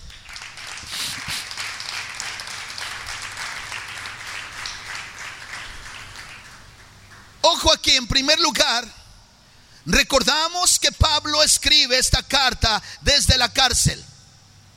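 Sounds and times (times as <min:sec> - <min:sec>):
crowd applauding for the king: 0:00.0 - 0:07.3
speech: 0:07.6 - 0:09.0, 0:09.8 - 0:14.1.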